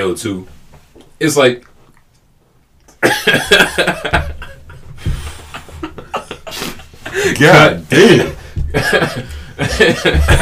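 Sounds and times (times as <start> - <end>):
speech: 0.0 - 0.6, 1.2 - 1.7, 3.0 - 4.3, 7.2 - 10.4
harsh coughing after debris hit the back of the throat: 3.0 - 4.5, 8.1 - 10.4
laughter: 3.0 - 10.4.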